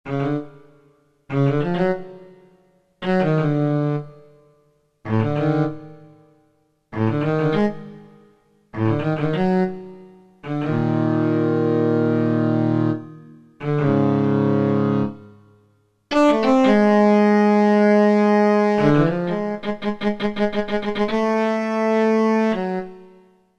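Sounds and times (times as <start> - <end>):
digital synthesizer cello: 1.3 - 4.2, 5.1 - 6.1, 7.0 - 8.1, 8.7 - 15.4, 16.1 - 23.2.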